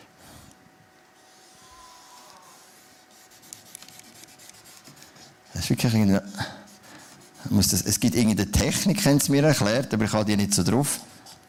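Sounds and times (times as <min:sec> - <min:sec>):
pen drawing on a surface: 0:02.5 - 0:05.3, 0:06.9 - 0:07.5
speech: 0:05.6 - 0:06.6, 0:07.5 - 0:11.1.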